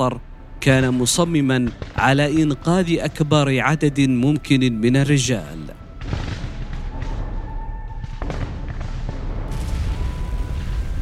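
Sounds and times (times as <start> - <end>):
speech: 0.0 - 5.8
dense rumbling battlefield din: 0.0 - 10.9
heavy explosions: 1.5 - 3.2, 5.8 - 10.9
artillery fire: 1.6 - 2.6, 6.0 - 10.9.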